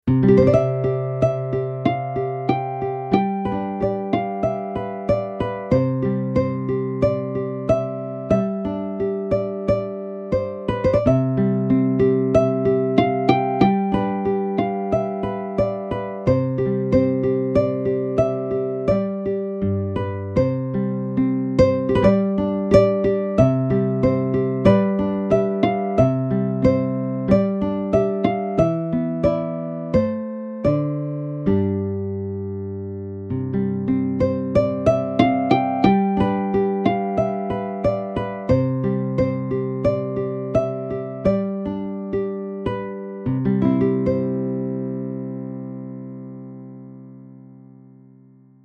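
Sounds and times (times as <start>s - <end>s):
harp: 0.1s - 32.4s, 33.3s - 45.6s.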